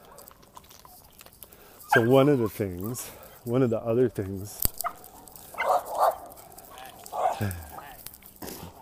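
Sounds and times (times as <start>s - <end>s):
low outdoor noise in a park: 0.0s - 8.8s
dog barking on a walk in a park: 1.9s - 2.2s, 4.8s - 7.4s
speech: 2.0s - 4.8s, 7.4s - 7.6s.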